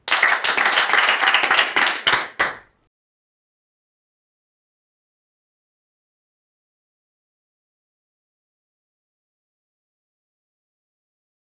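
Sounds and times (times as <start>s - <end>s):
celebration sound: 0.0s - 2.6s
applause: 0.0s - 2.7s.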